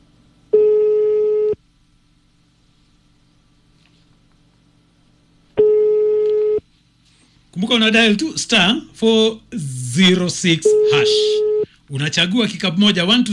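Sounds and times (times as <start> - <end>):
ringback tone of a phone call to a radio phone-in: 0.6 - 1.6, 5.6 - 6.6, 10.7 - 11.6
speech: 7.6 - 13.3.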